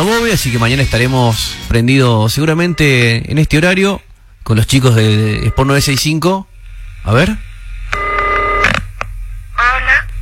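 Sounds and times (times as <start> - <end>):
speech: 0.2 - 7.5
constant low hum: 1.4 - 10.1
telephone dialing tones: 8.0 - 8.7.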